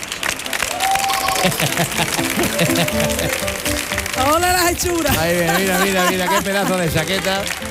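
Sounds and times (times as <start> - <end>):
large audience applauding loudly: 0.0 - 7.6
voices in the crowd: 0.0 - 7.6
cheers and whistles from the crowd: 0.7 - 1.6
laughter: 1.2 - 3.8, 5.0 - 7.6
speech: 1.4 - 7.6.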